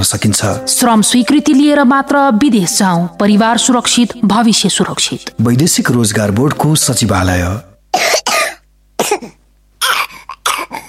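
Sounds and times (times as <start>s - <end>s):
speech: 0.0s - 8.2s, 9.0s - 9.4s
child coughing with rattling chest: 7.9s - 10.8s.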